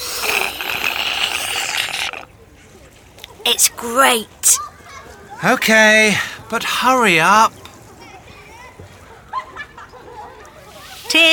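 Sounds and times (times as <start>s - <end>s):
water splashing from a shower: 0.0s - 2.2s, 10.6s - 11.3s
speech: 3.4s - 4.7s, 5.4s - 7.6s
child's voice: 3.5s - 4.6s.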